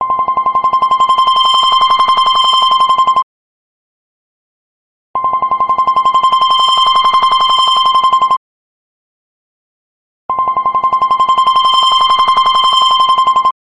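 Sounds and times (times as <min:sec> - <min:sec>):
old Sprint flip phone ringtone: 0:00.0 - 0:03.2, 0:05.2 - 0:08.4, 0:10.3 - 0:13.5.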